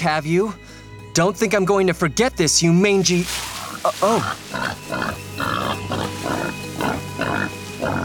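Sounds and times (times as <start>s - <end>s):
speech: 0.0s - 5.2s
giant wild boar grunting and snuffling in a snowy clearing: 3.1s - 8.0s.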